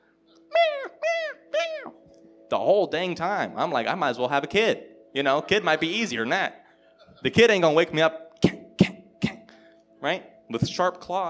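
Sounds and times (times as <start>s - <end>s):
laughter: 0.5s - 1.9s, 5.2s - 6.4s
cat meowing: 0.6s - 2.0s
speech: 1.8s - 8.2s, 10.0s - 11.2s.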